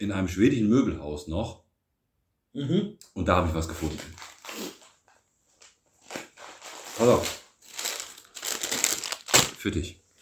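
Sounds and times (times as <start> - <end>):
speech: 0.0 - 1.6, 2.6 - 4.3, 7.0 - 7.4, 9.6 - 10.0
plastic bag of licorice crinkling as it is handed over: 3.8 - 5.0, 5.6 - 9.8.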